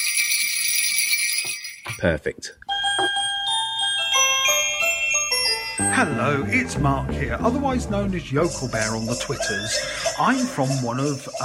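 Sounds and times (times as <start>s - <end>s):
shaken sleigh bells jingling: 0.0s - 11.4s
speech: 2.0s - 2.7s, 5.8s - 11.4s
laughter: 7.5s - 11.4s.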